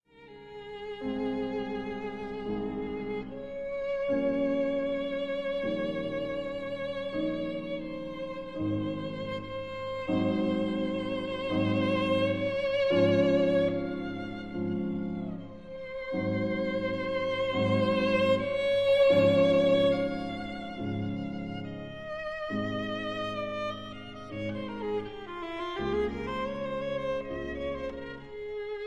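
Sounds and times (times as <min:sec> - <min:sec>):
adagio for violin and piano: 0:00.0 - 0:28.8.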